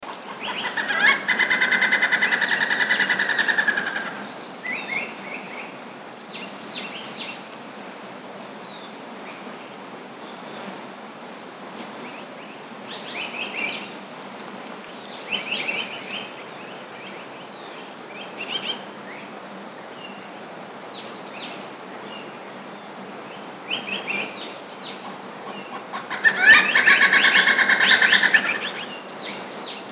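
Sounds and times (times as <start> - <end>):
Malabar gray hornbill: 0.1 - 5.5, 23.7 - 29.9.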